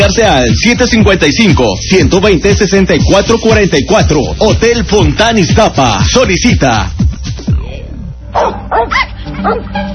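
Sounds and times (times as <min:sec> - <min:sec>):
speech: 0:00.1 - 0:07.0, 0:08.8 - 0:09.9
dog barking: 0:08.3 - 0:09.7.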